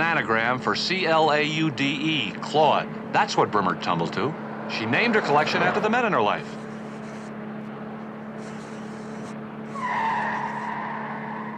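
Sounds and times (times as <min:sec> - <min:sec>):
speech: 0:00.0 - 0:06.6
car engine droning: 0:00.0 - 0:11.5
drawn-out tire squeal: 0:04.4 - 0:07.5, 0:08.1 - 0:11.5.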